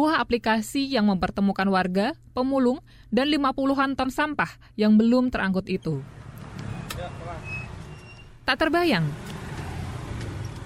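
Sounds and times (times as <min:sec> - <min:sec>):
speech: 0:00.2 - 0:06.2, 0:08.5 - 0:09.4
three-wheeled garbage collection vehicle engine rumbling: 0:05.9 - 0:10.6.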